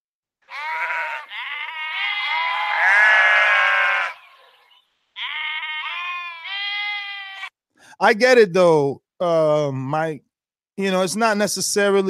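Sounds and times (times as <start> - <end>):
sheep bleating: 0.4 - 7.5
speech: 8.0 - 12.0.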